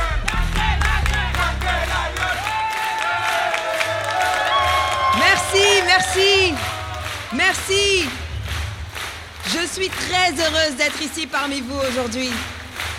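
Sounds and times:
large crowd cheering and shouting in acclaim: 0.0s - 10.7s
scattered clapping: 0.0s - 12.9s
whoops: 2.4s - 7.2s
speech: 9.8s - 12.6s.

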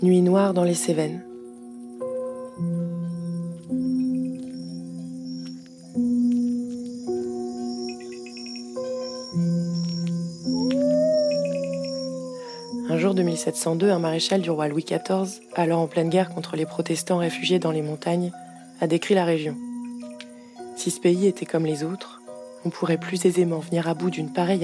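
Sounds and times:
speech: 0.0s - 1.3s, 13.4s - 19.6s, 20.8s - 24.6s
crickets chirping at night: 0.0s - 24.6s
dogs howling at night: 10.6s - 12.8s.

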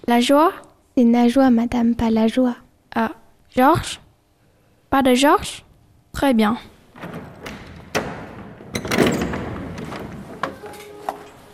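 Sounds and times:
speech: 0.0s - 4.0s, 4.9s - 7.3s
classroom door swinging shut with a solid thud and rattle: 7.0s - 10.8s.

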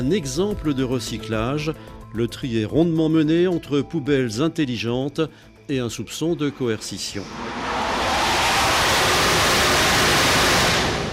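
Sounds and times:
speech: 0.0s - 7.6s
wind roaring on aircraft carrier flight deck in the Mediterranean: 7.2s - 11.1s.

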